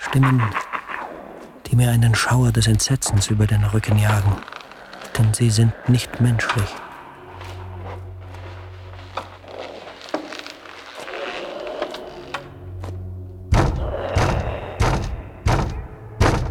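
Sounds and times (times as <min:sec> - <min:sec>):
speech: 0:00.1 - 0:00.6, 0:01.7 - 0:04.5, 0:05.2 - 0:06.8
heavy knocks on a hallway door: 0:13.5 - 0:16.4.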